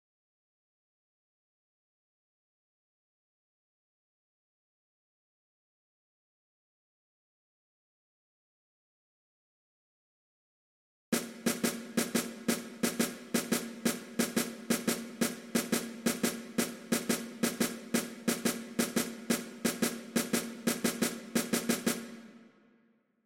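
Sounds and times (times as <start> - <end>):
snare drum for wind band: 11.2 - 22.5.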